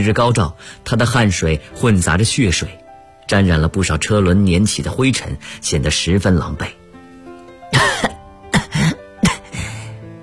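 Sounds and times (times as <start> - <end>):
speech: 0.0 - 6.8
wounded man coughing while collapsing on dusty wasteland ground: 7.7 - 9.7.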